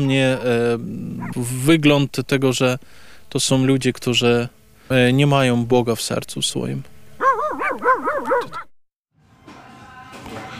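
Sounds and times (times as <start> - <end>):
speech: 0.0 - 6.9, 7.8 - 8.7
dogs barking and yelping: 1.2 - 1.5, 7.2 - 8.8.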